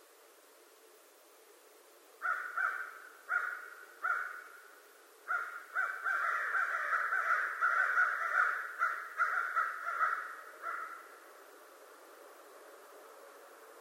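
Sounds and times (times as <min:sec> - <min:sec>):
American crow giving harsh raucous caws: 0:02.2 - 0:04.6, 0:05.3 - 0:11.2.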